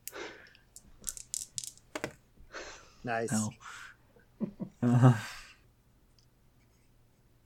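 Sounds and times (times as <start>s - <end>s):
dice clattering and rattling: 0.8s - 2.2s
speech: 3.0s - 3.7s, 4.4s - 5.4s.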